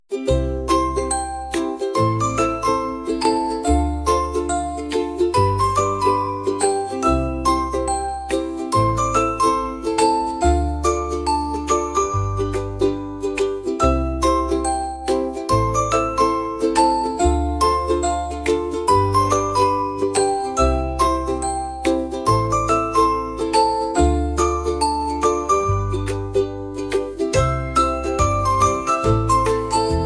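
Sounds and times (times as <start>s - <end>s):
children's music: 0.1s - 30.0s.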